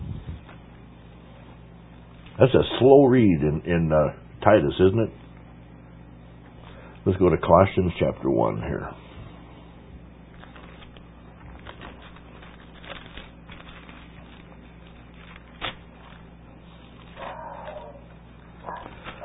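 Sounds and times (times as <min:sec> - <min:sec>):
steady low hum: 0:00.0 - 0:19.2
speech: 0:02.4 - 0:05.2, 0:07.1 - 0:09.0
household dog barking: 0:17.2 - 0:19.2.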